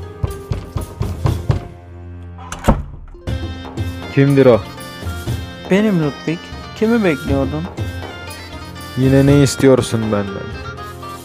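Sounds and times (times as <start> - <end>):
sustained musical backdrop: 0.0 - 11.2
knocking on a door: 0.2 - 1.8
speech: 4.2 - 4.8, 5.7 - 7.9, 9.0 - 10.7.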